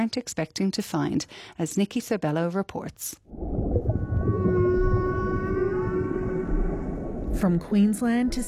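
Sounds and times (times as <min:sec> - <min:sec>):
speech: 0:00.0 - 0:04.4, 0:07.3 - 0:08.4
dense low underwater rumble and hiss: 0:03.3 - 0:08.4
humpback whale long sustained tonal moan: 0:03.9 - 0:07.1.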